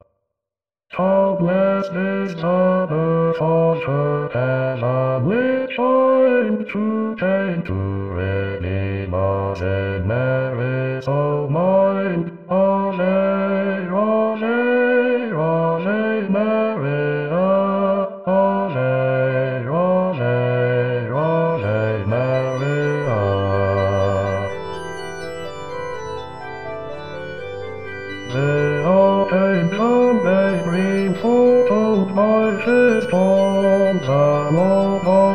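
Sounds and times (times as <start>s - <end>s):
Christmas carol bass part: 1.0s - 35.3s.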